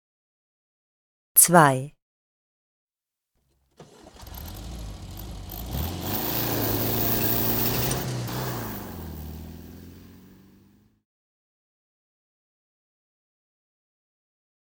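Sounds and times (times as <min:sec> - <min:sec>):
speech: 0:01.4 - 0:02.0
car engine cranking, starting and revving: 0:03.8 - 0:10.8.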